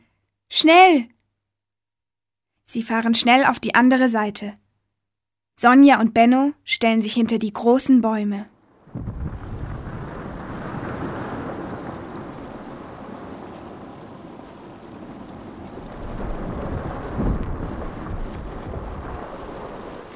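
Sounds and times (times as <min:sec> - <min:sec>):
speech: 0:00.5 - 0:01.2, 0:02.7 - 0:04.6, 0:05.6 - 0:09.1
snow avalanche rushing down: 0:08.7 - 0:20.1.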